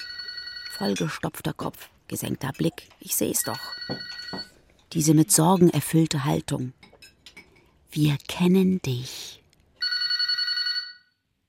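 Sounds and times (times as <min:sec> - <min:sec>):
telephone ringing: 0:00.0 - 0:01.0, 0:03.4 - 0:04.6, 0:09.8 - 0:11.2
speech: 0:00.8 - 0:06.9, 0:07.9 - 0:09.4.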